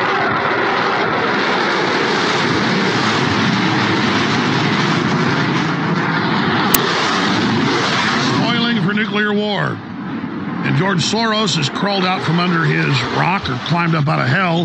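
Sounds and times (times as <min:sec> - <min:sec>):
F-16 fighter jets roaring in an attack exercise over Denmark: 0:00.0 - 0:14.6
speech: 0:10.9 - 0:14.6.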